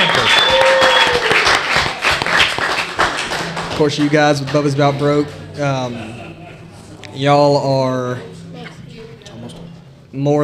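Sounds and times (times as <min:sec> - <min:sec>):
faint tonal whistle: 0:00.0 - 0:01.2
room full of people applauding: 0:00.0 - 0:06.6
speech: 0:03.8 - 0:06.2, 0:07.2 - 0:08.4, 0:10.1 - 0:10.4
laughter: 0:04.6 - 0:07.4.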